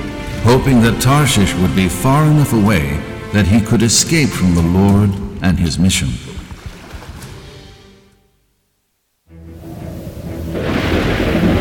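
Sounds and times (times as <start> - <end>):
hissing wind or rain at sea: 0.0 - 3.4, 9.5 - 11.5
deep rumbling of a violent storm at sea: 0.0 - 5.5, 9.5 - 11.5
speech: 0.4 - 6.3.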